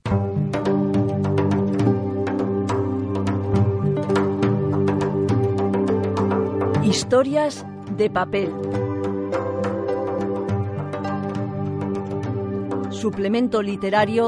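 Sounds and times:
radio program opening instrumental jingle: 0.1s - 14.2s
speech: 7.0s - 8.8s, 13.0s - 14.2s.

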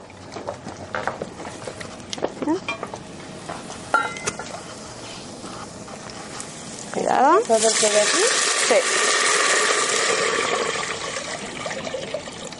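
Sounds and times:
speech: 2.5s - 2.8s, 7.4s - 9.2s
utensils clinking against a cooking pot: 3.9s - 4.6s
chicken broth sizzling and bubbling in a hot cooking pot: 3.9s - 12.4s.

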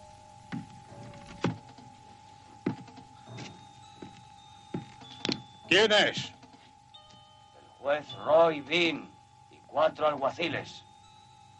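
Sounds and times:
faint steady hum: 0.0s - 11.5s
dull solid knocks on a door: 2.6s - 5.4s
speech: 5.7s - 6.4s, 7.9s - 9.1s, 9.7s - 10.9s.

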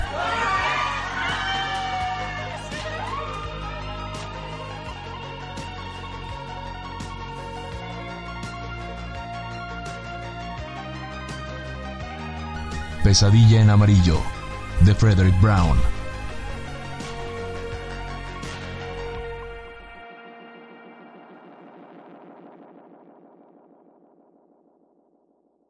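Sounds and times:
birthday party guests shouting in chorus: 0.0s - 3.9s
steady musical backdrop: 0.0s - 22.9s
speech: 13.0s - 15.9s.

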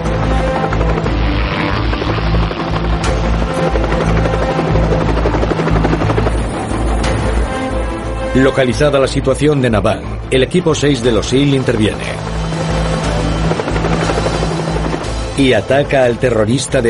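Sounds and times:
Little Bird and Black Hawk military helicopter rotor blades thumping overhead: 0.0s - 8.2s, 11.2s - 16.3s
Little Bird and Black Hawk military helicopter engine whine: 0.0s - 8.6s, 10.0s - 16.8s
speech: 8.4s - 12.3s, 15.4s - 16.8s.

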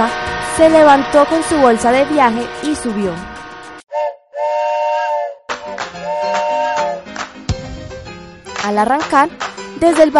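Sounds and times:
speech: 0.0s - 3.4s, 8.7s - 10.1s
rumbling machinery of train pulling into a station: 0.0s - 3.8s
loud sustained steam train whistle: 0.0s - 7.2s.

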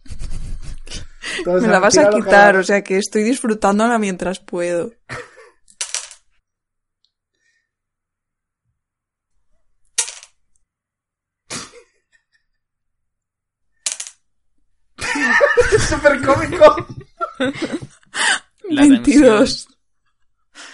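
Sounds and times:
laughter: 0.0s - 2.3s, 15.0s - 19.6s
speech: 1.4s - 5.3s, 18.8s - 19.7s
dice clattering and rolling: 5.7s - 6.3s, 9.9s - 10.4s, 13.8s - 14.2s.

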